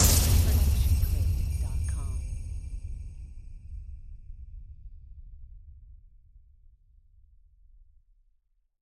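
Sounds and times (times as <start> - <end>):
magic explosion: 0.0 - 2.2.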